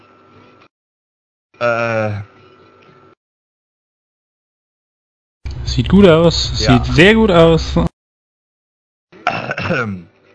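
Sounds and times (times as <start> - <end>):
speech: 1.6 - 2.3, 5.8 - 7.9, 9.7 - 10.1
loud rough throat clearing: 9.2 - 10.1.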